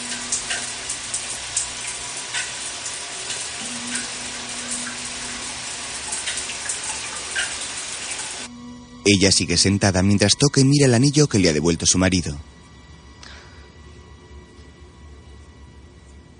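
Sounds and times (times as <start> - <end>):
shower water spray running in a bathroom: 0.0 - 8.5
speech: 9.1 - 12.6.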